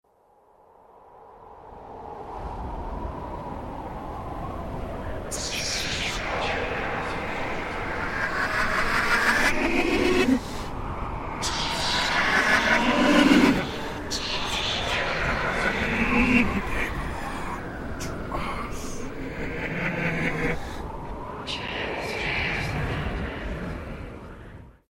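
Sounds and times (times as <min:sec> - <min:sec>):
wind reversed: 0:01.3 - 0:24.8
man laughing reversed: 0:06.3 - 0:10.6, 0:11.6 - 0:17.3.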